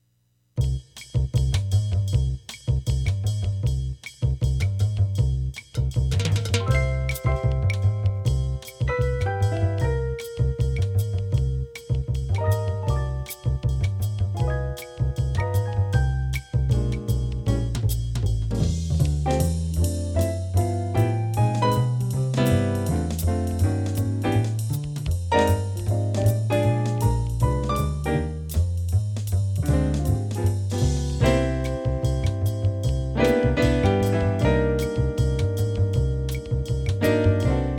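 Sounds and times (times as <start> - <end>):
jazz band trio playing: 0.6 - 37.7.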